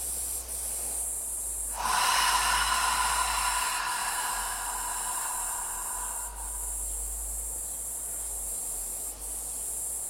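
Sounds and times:
deep exhale through the mouth with belly pulled in, meditation breathing exercise: 1.7s - 7.5s.

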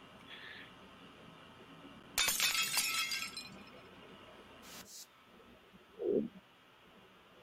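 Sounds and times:
glass breaking: 2.2s - 3.8s
glass shards tinkling: 2.2s - 3.8s.

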